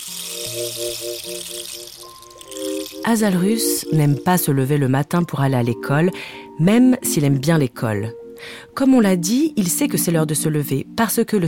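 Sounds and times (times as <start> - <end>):
rain stick being turned over: 0.0 - 4.7
soft sustained musical tones: 0.0 - 11.4
speech: 0.5 - 11.4.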